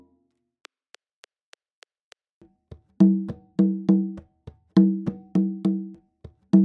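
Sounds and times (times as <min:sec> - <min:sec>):
Colombian rumba music at 102 bpm: 0:03.0 - 0:06.6.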